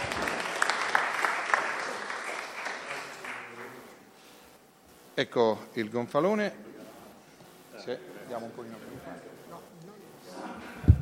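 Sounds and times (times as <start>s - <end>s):
crowd in Florence applauding: 0.0s - 4.0s
speech: 5.2s - 6.7s, 7.9s - 9.4s.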